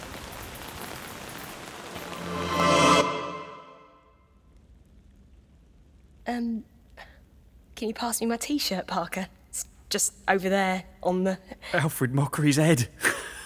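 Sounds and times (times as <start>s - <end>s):
rain falling: 0.0s - 2.2s
speech: 6.3s - 6.7s, 7.8s - 13.4s.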